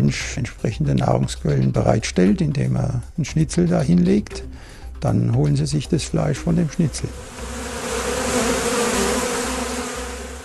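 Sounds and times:
speech: 0:00.0 - 0:07.6
black-and-yellow banded wasps buzzing in late summer: 0:06.4 - 0:10.4.

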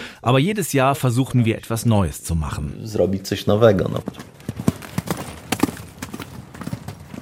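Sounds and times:
faint outdoor background: 0:00.0 - 0:07.2
speech: 0:00.2 - 0:04.4
horse hooves clip-clopping during riding practice: 0:03.7 - 0:07.2.

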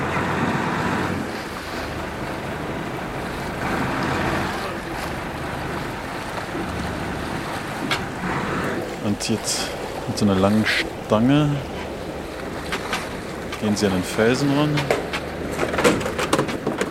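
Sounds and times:
fishing boat low engine drone on the sea: 0:00.0 - 0:16.8
rushing sea waves: 0:00.0 - 0:16.8
speech: 0:09.2 - 0:11.7, 0:13.6 - 0:15.0.

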